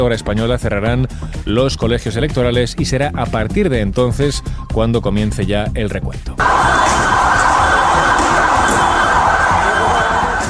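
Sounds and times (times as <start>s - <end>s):
speech: 0.0s - 6.8s
emergency sirens wailing at a football stadium riot in Indonesia: 6.4s - 10.4s.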